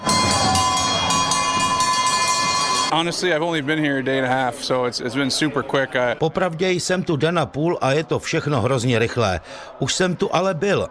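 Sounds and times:
many cowbells ringing in a large stadium crowd: 0.0 - 3.3
speech: 2.9 - 10.8.

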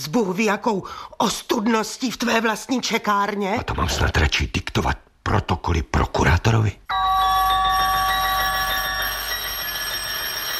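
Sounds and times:
speech: 0.0 - 7.1
flat doorbell ringing with a shrill buzzing electric tone: 6.9 - 10.5.

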